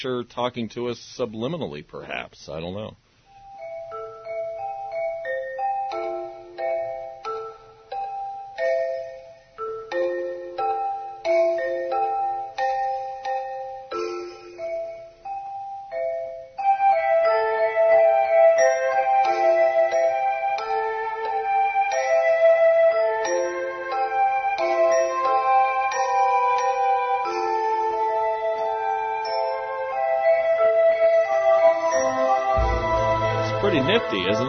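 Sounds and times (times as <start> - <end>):
speech: 0.0 - 3.0
bright chime-like bell notes: 3.3 - 34.4
fuller sustained synth layer: 32.2 - 34.4.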